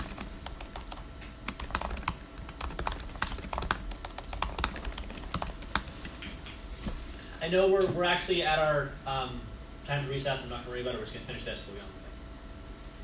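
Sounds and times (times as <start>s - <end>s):
typing on a computer keyboard during a meeting: 0.0s - 6.2s
low hum: 0.0s - 13.0s
speech: 7.4s - 12.0s.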